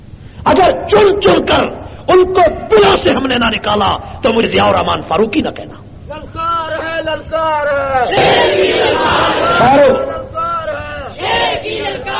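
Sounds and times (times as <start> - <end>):
speech: 0.5 - 6.2, 7.1 - 10.1
large crowd chanting slogans in unison: 8.0 - 12.1.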